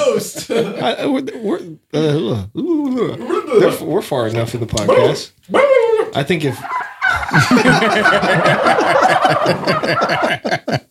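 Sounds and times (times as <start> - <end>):
laughter: 0.0 - 1.2, 7.1 - 10.8
speech: 0.1 - 10.8
person imitating a turkey gobble with their voice: 4.8 - 10.3.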